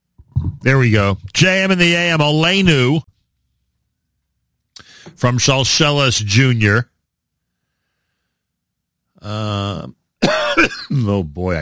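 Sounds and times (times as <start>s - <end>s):
speech: 0.6s - 3.1s, 5.2s - 6.9s, 9.2s - 10.0s, 10.6s - 11.6s
strained throaty cough: 10.2s - 11.2s.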